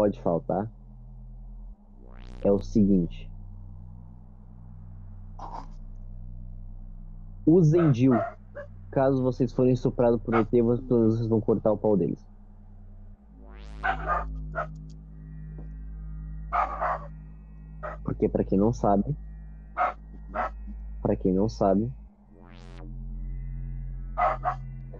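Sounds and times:
speech: 0:00.0 - 0:00.8, 0:02.4 - 0:03.3, 0:07.4 - 0:12.3, 0:13.8 - 0:14.8, 0:18.1 - 0:19.2, 0:21.1 - 0:22.0
steady electronic hum: 0:00.0 - 0:24.9
female dog barking sharply: 0:07.7 - 0:08.7, 0:10.3 - 0:10.5, 0:13.8 - 0:14.7, 0:16.6 - 0:17.1, 0:19.8 - 0:20.6, 0:24.2 - 0:24.6.

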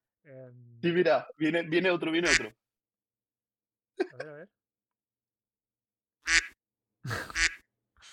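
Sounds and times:
speech: 0:00.5 - 0:02.6, 0:04.0 - 0:04.6
laughter: 0:04.0 - 0:04.4, 0:07.0 - 0:07.5
short nasal duck quack from a soundboard: 0:06.3 - 0:06.6, 0:07.4 - 0:07.6.

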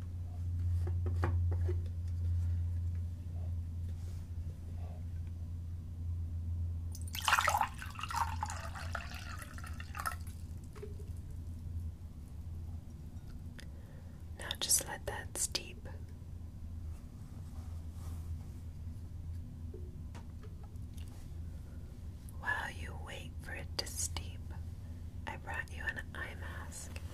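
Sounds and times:
steady low hum: 0:00.0 - 0:27.1
water pouring into a container: 0:07.0 - 0:10.4.

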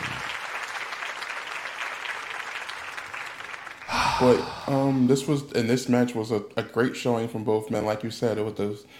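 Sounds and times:
crowd applause: 0:00.0 - 0:05.3
speech: 0:04.2 - 0:08.9.

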